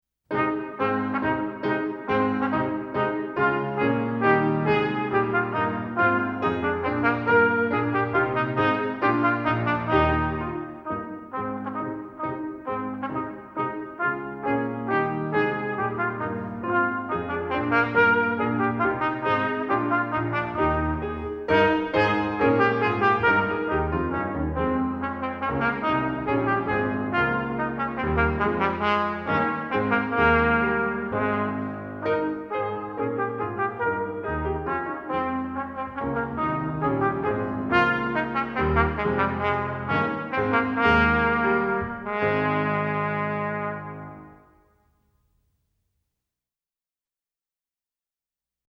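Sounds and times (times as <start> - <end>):
trumpet playing a passepied: 0.3 - 44.7.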